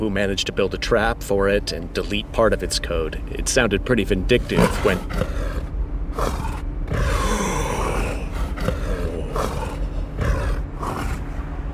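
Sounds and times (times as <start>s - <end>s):
speech: 0.0s - 5.6s
low growling rumble: 4.2s - 11.7s
large wild animal breathing heavily into a person's ear: 4.3s - 11.5s.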